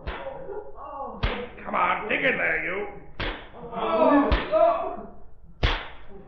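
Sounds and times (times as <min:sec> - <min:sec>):
whip cracks lashing mine workers in a mine: 0:00.0 - 0:00.4, 0:01.2 - 0:01.6, 0:03.2 - 0:03.6, 0:04.3 - 0:04.6, 0:05.6 - 0:06.2
exhausted mine workers groaning with strained voices: 0:00.0 - 0:02.3, 0:03.6 - 0:05.2
speech: 0:01.7 - 0:03.0.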